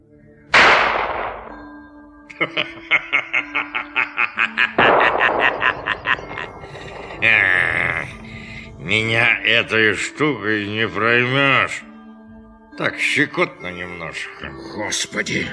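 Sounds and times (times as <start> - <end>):
gunshot: 0.5 - 1.7, 4.8 - 7.1
rhythmic snickering chuckle pulses: 2.3 - 7.8
speech: 2.4 - 11.9, 12.8 - 15.5.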